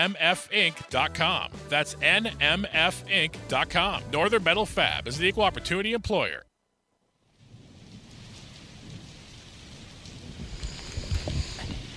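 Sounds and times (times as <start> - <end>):
speech: 0.0 - 6.5
rain pattering: 7.3 - 11.9
thunder rumble: 7.4 - 11.9.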